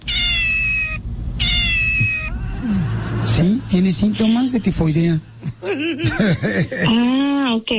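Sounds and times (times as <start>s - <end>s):
cat meowing: 0.0s - 2.4s
low rumble: 0.0s - 6.8s
laughter: 2.3s - 7.0s
speech: 3.4s - 7.7s.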